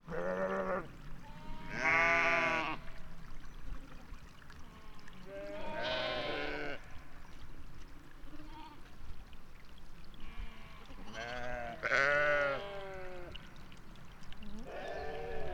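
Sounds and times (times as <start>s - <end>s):
sheep bleating in Val d'Ajol: 0.1s - 2.9s, 5.2s - 6.9s, 10.2s - 13.3s, 14.6s - 15.5s.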